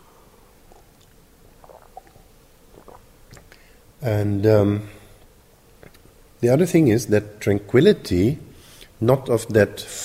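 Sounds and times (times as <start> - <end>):
small gulps of water: 0.6 - 3.8, 5.0 - 6.1
speaker sipping water: 0.6 - 3.8, 5.8 - 6.1
soft wet mouth clicks: 0.7 - 3.6, 5.8 - 6.1
speech: 4.0 - 5.0, 6.4 - 8.4, 9.0 - 10.0.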